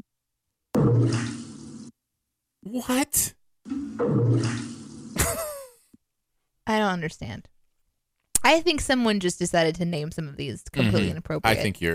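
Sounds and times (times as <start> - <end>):
speech: 1.0 - 1.4, 2.6 - 3.4, 6.7 - 7.5, 8.4 - 11.9
toilet flushing: 3.7 - 5.4
person asking a short spoken question: 10.8 - 11.9.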